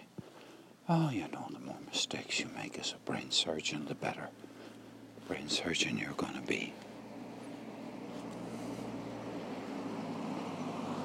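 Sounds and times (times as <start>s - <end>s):
speech: 0.9s - 4.5s, 5.3s - 6.9s
car passing by: 6.2s - 11.0s.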